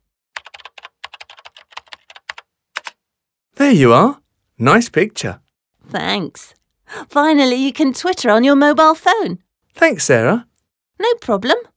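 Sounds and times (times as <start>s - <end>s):
typing on a computer keyboard: 0.4s - 3.0s
speech: 3.7s - 11.7s.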